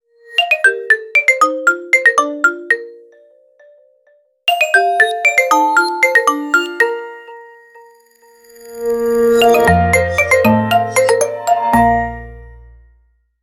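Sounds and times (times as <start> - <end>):
default phone ringtone melody: 0.4 - 3.8, 4.5 - 12.6.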